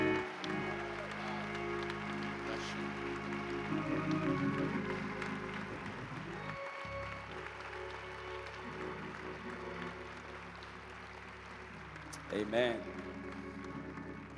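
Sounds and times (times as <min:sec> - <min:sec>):
church audience applauding and cheering a welcome: 0:00.0 - 0:14.3
speech: 0:12.4 - 0:13.0.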